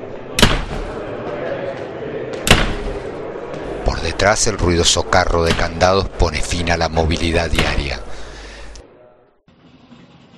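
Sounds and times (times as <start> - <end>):
murmur: 0.0 - 9.3
dormitory door slamming: 0.4 - 1.0, 2.4 - 3.1, 5.4 - 5.8, 7.4 - 8.0
speech: 4.2 - 8.0.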